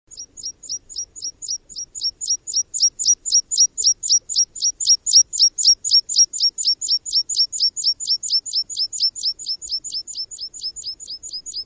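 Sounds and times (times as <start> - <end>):
bird calling in high sharp downslurred notes: 0.1 - 11.6.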